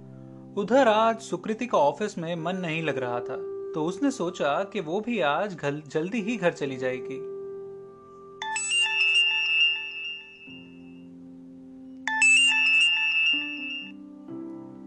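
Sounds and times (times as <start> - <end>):
speech: 0.6 - 7.3
sustained musical tone: 6.2 - 14.2
mobile phone ringtone with repeating electronic melody: 8.4 - 11.2, 12.0 - 14.0.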